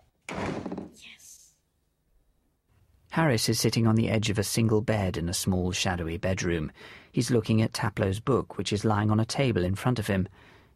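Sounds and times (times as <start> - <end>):
door swinging shut with a thud: 0.2 - 1.0
speech: 3.2 - 10.5.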